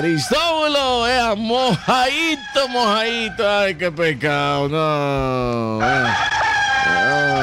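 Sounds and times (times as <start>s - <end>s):
speech: 0.0s - 7.4s
rooster crowing after a wet winter night: 1.7s - 3.8s, 5.8s - 7.4s.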